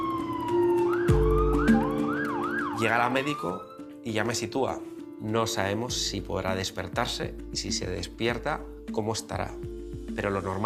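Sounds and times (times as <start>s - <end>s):
ambulance siren wailing: 0.0s - 3.9s
speech: 2.8s - 10.6s.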